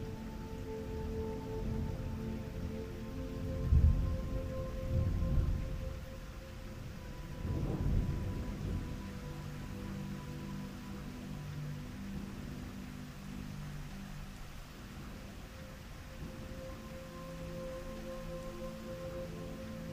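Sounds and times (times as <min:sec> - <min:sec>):
soft rain recorded in nature: 0:00.0 - 0:19.9
soft sleep music with sustained low tones at 1111 Hz: 0:00.0 - 0:19.9
deep thunder rolls recorded in nature: 0:07.3 - 0:09.2.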